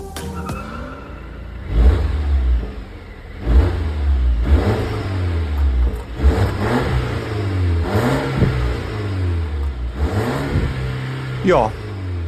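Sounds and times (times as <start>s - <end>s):
Swedish car engine revving hard, hitting soft rev limiter: 0.7s - 12.2s
speech: 11.5s - 11.8s.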